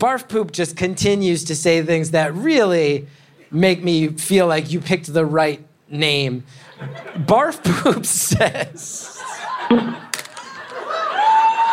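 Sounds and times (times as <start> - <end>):
speech: 0.0 - 10.1
laughter: 6.6 - 11.7
live audience cheering and shouting: 9.9 - 11.7
sharp whoops: 10.9 - 11.7.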